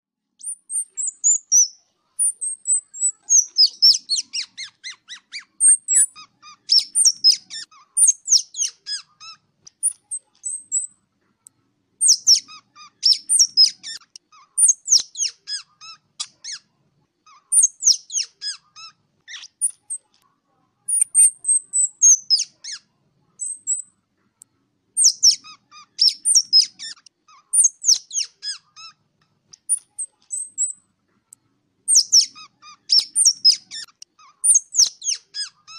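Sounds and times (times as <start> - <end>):
ground squirrel calling to the flock: 0.4 - 11.0, 12.0 - 16.7, 17.3 - 20.1, 20.9 - 23.9, 25.0 - 29.0, 29.6 - 30.8, 31.9 - 35.7.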